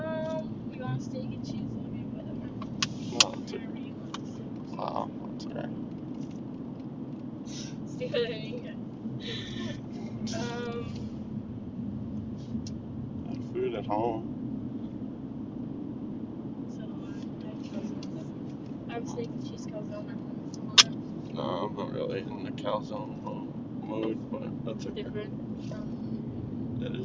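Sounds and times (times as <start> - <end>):
voices: 0.0 - 5.8, 7.5 - 11.2, 13.3 - 14.3, 16.7 - 26.2, 26.8 - 27.0
car driving along the road: 0.0 - 27.0
speech: 22.2 - 23.4, 24.0 - 26.2.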